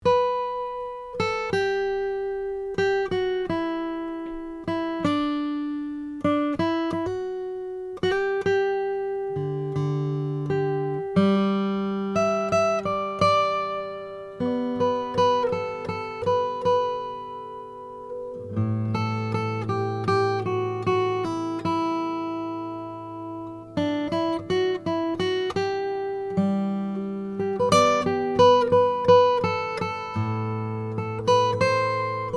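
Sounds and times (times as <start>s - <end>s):
Brazilian rosewood acoustic guitar: 0.0s - 32.3s.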